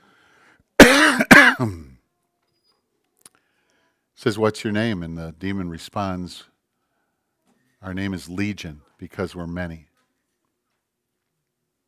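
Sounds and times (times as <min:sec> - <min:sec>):
harsh coughs from a tickle in the throat: 0:00.8 - 0:02.0
rasping throat clearing: 0:00.8 - 0:02.0
speech: 0:01.6 - 0:01.9, 0:04.2 - 0:06.5, 0:07.8 - 0:09.9.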